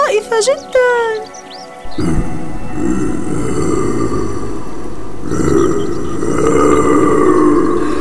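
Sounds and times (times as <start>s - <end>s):
speech: 0.3s - 1.4s
big bear growling in a forest: 1.8s - 7.9s.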